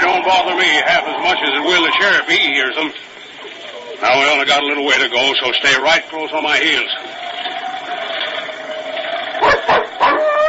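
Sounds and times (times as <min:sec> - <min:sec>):
speech: 0:00.2 - 0:07.2
dog barking in sharp gruff bursts: 0:09.4 - 0:10.4.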